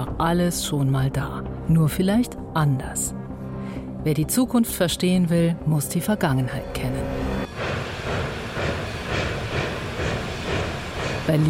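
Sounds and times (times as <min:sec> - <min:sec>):
speech: 0:00.2 - 0:07.4, 0:11.3 - 0:11.4
rumbling machinery: 0:07.1 - 0:11.4
steam train chuffing at a station: 0:07.4 - 0:11.4.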